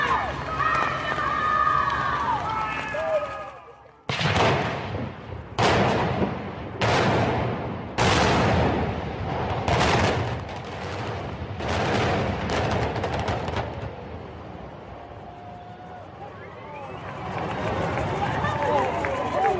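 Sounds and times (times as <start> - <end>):
crowd murmuring and cheering: 0.0 - 4.2, 14.1 - 19.5
demolition charges imploding a building: 4.1 - 14.9.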